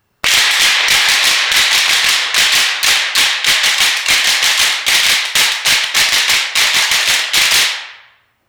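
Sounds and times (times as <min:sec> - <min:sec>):
sticks slapping: 0:00.2 - 0:07.9.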